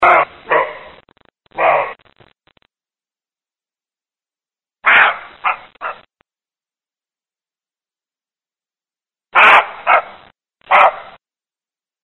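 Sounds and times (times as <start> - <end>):
roe deer barking: 0.0 - 0.9, 4.8 - 6.1, 9.3 - 11.2.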